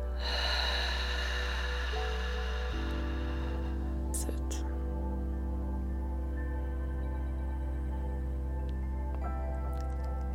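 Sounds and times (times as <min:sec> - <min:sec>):
breathy rushing inhale through nose: 0:00.0 - 0:04.1
steady low droning tone: 0:00.0 - 0:10.3.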